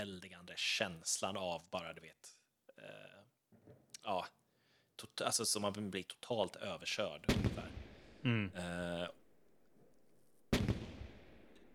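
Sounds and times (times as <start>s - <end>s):
speech: 0.0s - 4.4s, 5.0s - 9.2s
sharp bang with rumbling crackling tail outdoors: 7.3s - 8.2s, 10.5s - 11.7s.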